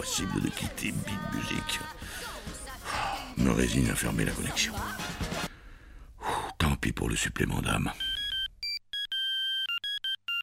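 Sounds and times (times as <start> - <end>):
speech: 0.2 - 2.6, 3.4 - 5.5, 6.8 - 8.1
cordless phone ringing with a custom ringtone based on a jazz film-score melody: 8.0 - 10.4.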